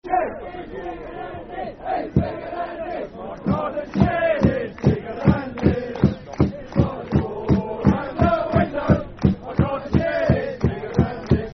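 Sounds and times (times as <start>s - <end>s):
football chant song: 0.0s - 11.5s.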